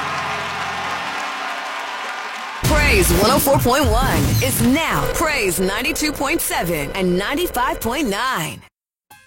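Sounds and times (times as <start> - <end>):
many people applauding: 0.0 - 3.8
low hum: 2.7 - 8.1
speech: 2.9 - 8.7.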